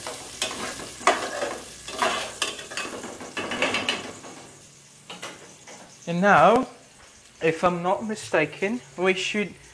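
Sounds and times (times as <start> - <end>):
scraping and stirring clatter: 0.0 - 4.4
garlic sizzling in a frying pan on minimum heat: 0.0 - 9.7
speech: 6.1 - 6.8, 7.4 - 9.6.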